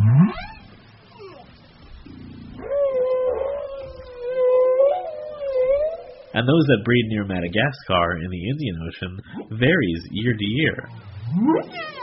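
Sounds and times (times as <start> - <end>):
whale song from whales breeding off Gabon or Madagascar: 0.0 - 6.4, 10.9 - 12.0
speech: 6.4 - 12.0.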